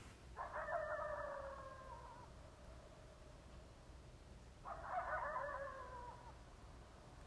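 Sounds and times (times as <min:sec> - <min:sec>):
coyotes howling upstate: 0:00.3 - 0:03.7, 0:04.5 - 0:06.8.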